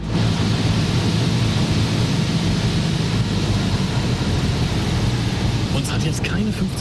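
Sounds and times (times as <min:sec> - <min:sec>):
small airplane cabin engine drone during landing approach to Juist: 0:00.0 - 0:06.7
speech: 0:06.0 - 0:06.7.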